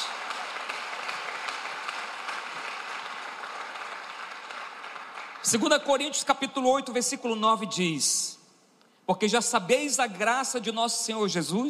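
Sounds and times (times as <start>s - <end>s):
audience applauding loudly: 0.0s - 5.7s
speech: 5.4s - 8.4s, 9.1s - 11.6s.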